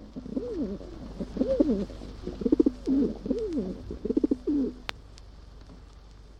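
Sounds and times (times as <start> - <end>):
several pigeons cooing: 0.0 - 4.9
faint steady hum: 0.0 - 6.3.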